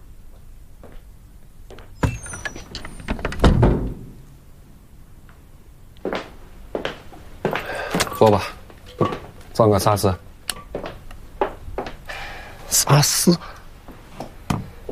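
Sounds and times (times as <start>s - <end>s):
door being shut with a heavy low thud: 2.0s - 4.2s
speech: 8.2s - 10.2s, 12.9s - 13.6s.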